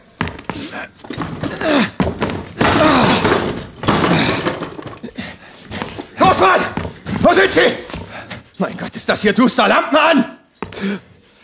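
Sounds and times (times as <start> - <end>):
heavy thuds against a door: 0.1 - 8.4
door being forced open by police at night: 1.1 - 5.1
speech: 7.3 - 7.9, 8.6 - 11.1.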